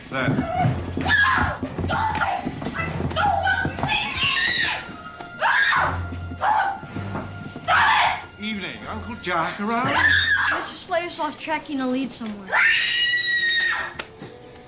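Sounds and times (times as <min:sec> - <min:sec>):
speech: 0:00.1 - 0:00.8, 0:09.2 - 0:13.0
people screaming in a film scene: 0:00.2 - 0:06.8, 0:07.7 - 0:08.3, 0:09.8 - 0:10.7, 0:12.5 - 0:14.0.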